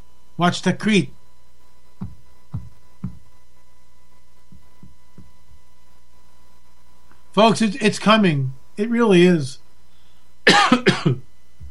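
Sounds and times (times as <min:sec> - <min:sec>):
speech: 0:00.4 - 0:01.2, 0:07.4 - 0:09.6
person coughing: 0:10.5 - 0:11.2.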